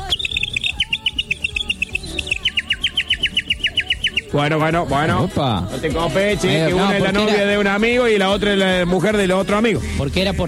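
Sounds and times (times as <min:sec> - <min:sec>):
bird chirping: 0:00.0 - 0:04.5
speech: 0:04.3 - 0:10.4.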